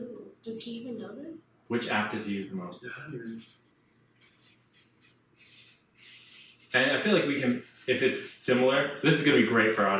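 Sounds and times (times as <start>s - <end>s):
speech: 0.4s - 3.6s, 6.7s - 9.9s
Sharpie markers squeaking and scratching across paper: 3.2s - 9.9s.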